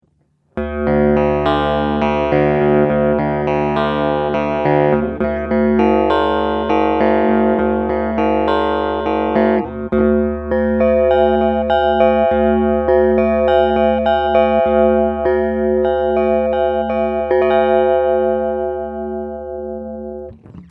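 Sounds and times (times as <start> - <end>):
guitar with internal oscillator ring modulator: 0.6 - 20.6.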